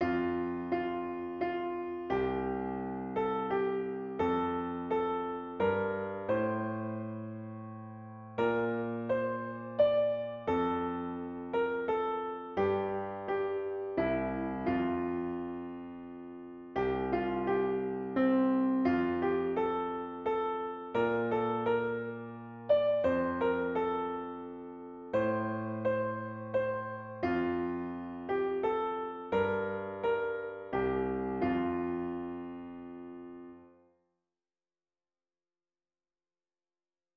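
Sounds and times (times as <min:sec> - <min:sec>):
Japanese folk song on piano: 0:00.0 - 0:33.8.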